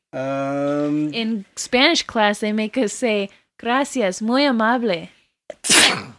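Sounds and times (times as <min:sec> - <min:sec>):
speech: 0:00.1 - 0:05.2
mother sneezing: 0:05.5 - 0:06.1.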